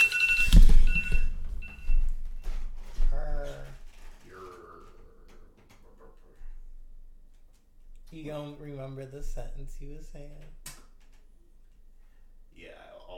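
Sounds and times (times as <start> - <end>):
timer alarm beeping with short high electronic tones: 0.0 - 2.5
speech: 8.3 - 10.7.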